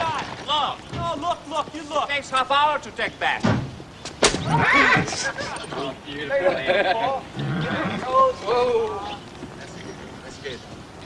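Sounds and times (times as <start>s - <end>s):
speech: 0.6s - 3.6s, 4.4s - 9.2s
horse neighing: 4.4s - 5.3s, 7.2s - 8.6s
laughter: 4.5s - 8.3s.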